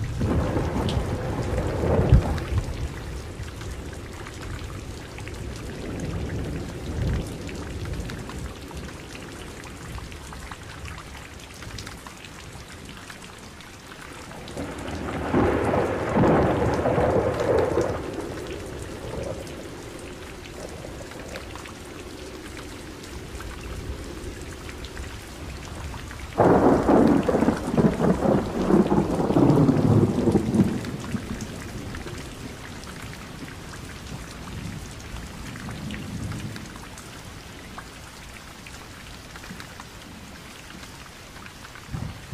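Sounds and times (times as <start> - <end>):
deep rolls of thunder in a forest thunderstorm: 0.0 - 10.1, 14.2 - 32.7
rain pattering on surfaces in a forest: 0.0 - 42.3.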